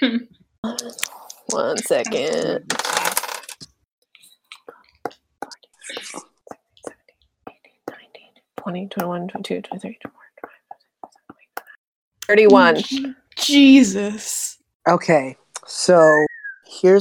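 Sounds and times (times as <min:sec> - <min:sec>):
speech: 0:00.0 - 0:03.0, 0:08.6 - 0:10.2, 0:12.3 - 0:16.9
big handful of dice rattling: 0:01.0 - 0:03.6.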